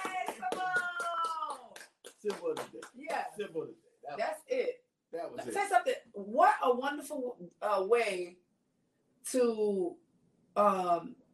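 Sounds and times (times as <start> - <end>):
person cheering: 0.0 - 1.8
hand clapping: 0.0 - 3.4
speech: 2.2 - 8.4, 9.3 - 10.0, 10.6 - 11.2.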